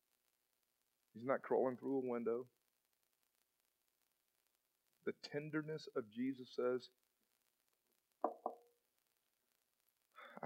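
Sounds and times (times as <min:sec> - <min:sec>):
speech: 0:01.2 - 0:02.6, 0:05.0 - 0:07.0
firm knocking on a door: 0:08.2 - 0:08.6.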